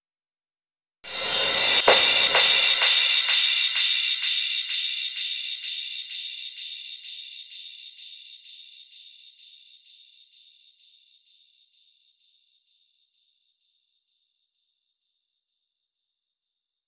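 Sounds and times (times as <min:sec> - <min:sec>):
female crash mix at 128 BPM: 0:01.1 - 0:06.7.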